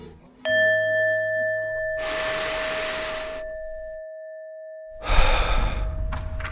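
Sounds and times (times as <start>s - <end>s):
sustained chime ringing softly: 0.5s - 5.1s
people breathing in and out together: 2.0s - 3.6s, 5.0s - 6.3s.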